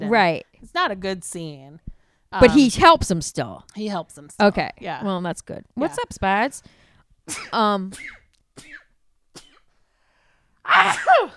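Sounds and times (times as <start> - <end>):
speech: 0.1 - 8.8, 10.6 - 11.3
person sneezing loudly: 7.3 - 9.7, 10.7 - 11.3.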